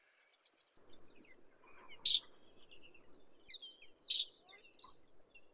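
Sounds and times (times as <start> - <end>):
ular altaiskii Tetraogallus altaicus calling: 2.0 - 2.3, 4.1 - 4.4.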